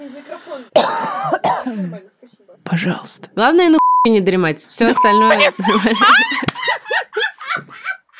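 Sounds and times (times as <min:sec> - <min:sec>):
speech: 0:00.1 - 0:07.0
person coughing and clearing throat: 0:00.7 - 0:01.9
laughter: 0:04.8 - 0:08.1.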